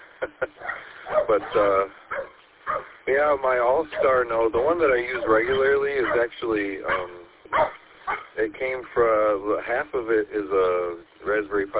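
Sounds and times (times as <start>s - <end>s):
speech: 0.2s - 2.0s, 3.1s - 7.7s, 8.4s - 11.7s
dog barking and yelping excitedly at neighbours: 0.6s - 3.0s, 3.9s - 8.4s.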